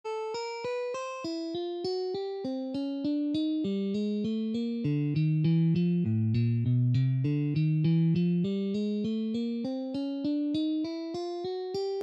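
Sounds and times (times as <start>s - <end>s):
guitar playing exercises: 0.0s - 12.0s.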